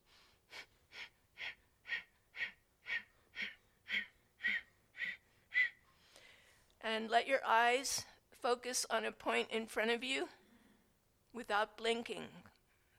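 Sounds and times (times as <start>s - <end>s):
rapid forceful yoga breath-of-fire breathing: 0.0s - 6.6s
speech: 6.9s - 10.4s, 11.3s - 12.5s.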